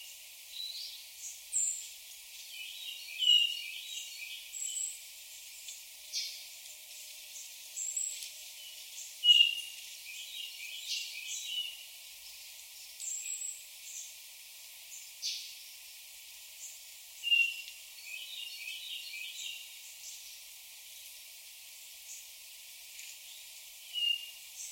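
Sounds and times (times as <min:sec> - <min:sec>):
light background noise: 0:00.0 - 0:24.7
Hermit thrush Catharus guttatus calls: 0:02.5 - 0:05.0, 0:07.8 - 0:11.8, 0:17.2 - 0:19.7, 0:23.8 - 0:24.7.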